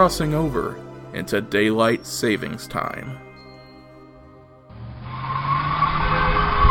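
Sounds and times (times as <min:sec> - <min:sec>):
speech: 0:00.0 - 0:03.3
car engine roaring as the car swoops by: 0:04.7 - 0:06.7
tire squealing as the car skids past the curb: 0:04.7 - 0:06.7.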